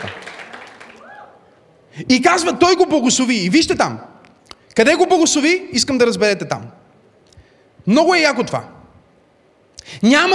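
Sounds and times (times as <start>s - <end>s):
audience clapping: 0.0s - 1.3s
audience cheer: 0.0s - 1.6s
speech: 2.0s - 4.1s, 4.8s - 6.8s, 7.9s - 8.8s, 9.9s - 10.3s.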